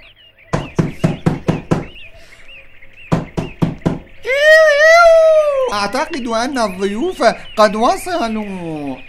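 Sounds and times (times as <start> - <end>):
sharp rapid knocking on a door: 0.5 - 2.0, 3.1 - 4.1
person calling out with a drawn-out voice: 4.2 - 6.0
speech: 5.8 - 9.0.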